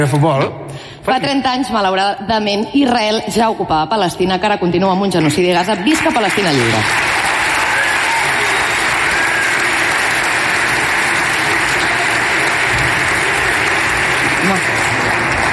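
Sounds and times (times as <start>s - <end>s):
speech: 0.0s - 7.1s
audience applause: 5.9s - 15.5s.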